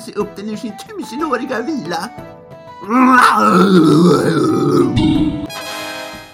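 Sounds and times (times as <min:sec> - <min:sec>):
speech: 0:00.0 - 0:05.5
man giving a deep straining roar: 0:02.8 - 0:05.5
man giving a rough groan: 0:02.8 - 0:05.5.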